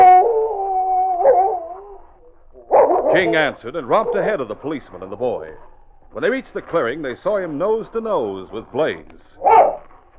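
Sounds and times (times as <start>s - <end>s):
wolf or dog howling: 0.0s - 4.6s, 9.4s - 10.1s
speech: 3.2s - 9.8s.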